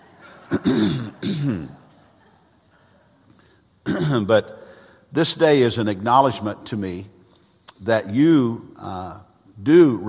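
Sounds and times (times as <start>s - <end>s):
man clearing his throat with gruff voiced bursts: 0.5s - 1.8s, 3.9s - 4.3s
speech: 0.7s - 1.8s, 4.0s - 7.2s, 7.8s - 10.0s.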